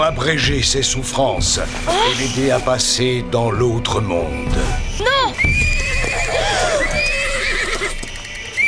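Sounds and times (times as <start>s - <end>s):
speech: 0.0s - 5.2s
agitated pony neighing shrilly: 5.4s - 8.1s
faint hoof clatter: 5.4s - 8.6s.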